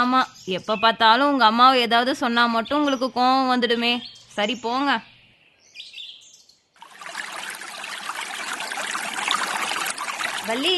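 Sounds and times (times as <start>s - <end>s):
speech: 0.0s - 5.1s, 10.4s - 10.7s
bird chirps: 2.6s - 6.8s
flowing river water: 6.8s - 10.7s.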